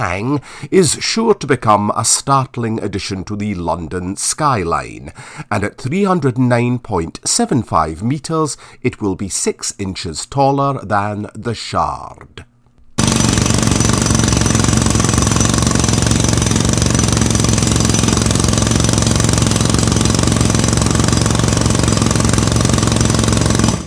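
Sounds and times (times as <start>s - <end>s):
speech: 0.0s - 12.5s
Tex 220 pneumatic rock breaker hammering: 13.0s - 23.8s.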